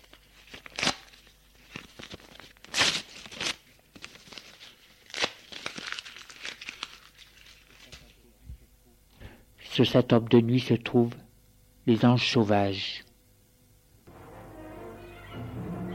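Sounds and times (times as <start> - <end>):
sheet of paper from beside a typewriter being torn: 0.0 - 8.1
speech: 9.8 - 11.2, 11.9 - 13.0.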